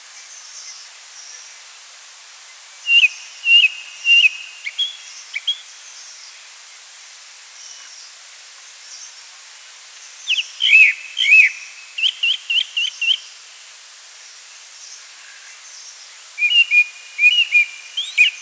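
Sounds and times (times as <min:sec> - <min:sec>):
Chestnut thrush song: 0:02.9 - 0:05.6, 0:10.3 - 0:13.2, 0:16.4 - 0:18.4.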